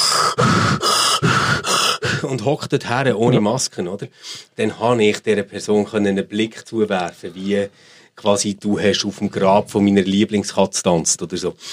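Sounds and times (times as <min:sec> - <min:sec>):
person imitating heavy out-of-breath panting: 0:00.0 - 0:02.2
speech: 0:02.3 - 0:11.7.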